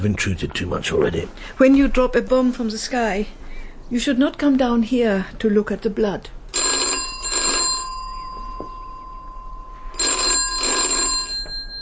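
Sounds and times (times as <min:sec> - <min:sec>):
speech: 0:00.0 - 0:06.7
telephone bell ringing with a rattling double trill: 0:06.5 - 0:11.8.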